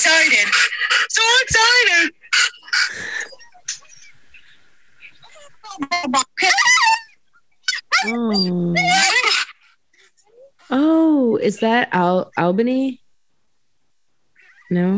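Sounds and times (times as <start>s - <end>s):
speech: 0.0s - 2.2s, 11.4s - 13.0s, 14.7s - 14.9s
excited dog squealing and yelping inside a car: 0.1s - 4.2s, 6.3s - 9.7s.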